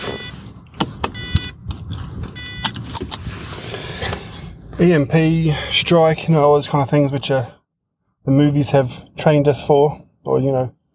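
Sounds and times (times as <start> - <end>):
car alarm high-pitched electronic tones: 0.0 - 0.4, 1.1 - 1.6, 2.4 - 2.9
low steady rumble: 0.2 - 10.7
sharp clicks: 2.6 - 3.3
speech: 4.8 - 7.6, 8.2 - 10.8.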